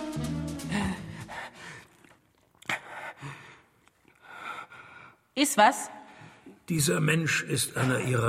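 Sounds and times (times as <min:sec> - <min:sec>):
man breathing heavily: 0:00.7 - 0:05.3
speech: 0:05.4 - 0:06.0, 0:06.7 - 0:08.2.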